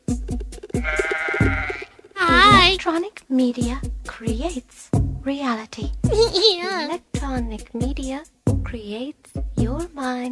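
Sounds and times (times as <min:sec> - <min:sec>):
sheep bleating: 0:00.8 - 0:02.6
speech: 0:02.8 - 0:10.2
laughter: 0:06.1 - 0:06.8.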